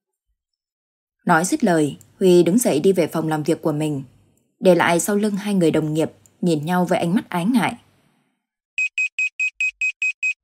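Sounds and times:
speech: 1.2s - 7.8s
electronic alarm clock beeping: 8.8s - 10.4s.

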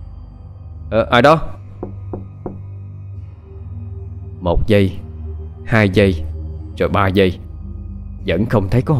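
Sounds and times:
speech: 0.9s - 1.6s, 4.4s - 5.0s, 5.7s - 7.4s, 8.2s - 8.9s
knocking on a toilet door: 1.8s - 2.7s.

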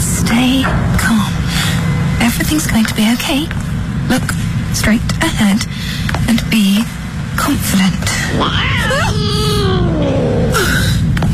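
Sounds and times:
steady low rumble: 0.0s - 11.3s
speech: 0.3s - 1.4s, 2.2s - 11.0s
cat meowing in drawn-out wavering cries: 8.4s - 10.6s.

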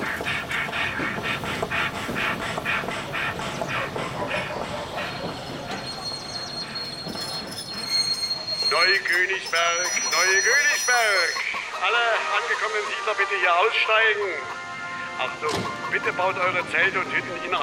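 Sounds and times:
train wheels clattering rolling into a station: 0.0s - 17.6s
train brakes squealing: 2.2s - 12.8s
speech: 8.8s - 14.6s, 15.2s - 17.6s.

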